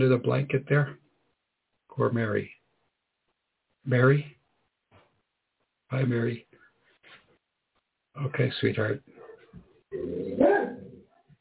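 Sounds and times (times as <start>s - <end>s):
speech: 0.0s - 1.0s, 2.0s - 2.6s, 3.8s - 4.4s, 5.9s - 6.5s, 8.2s - 9.1s, 9.9s - 10.8s
dog barking: 10.3s - 11.2s.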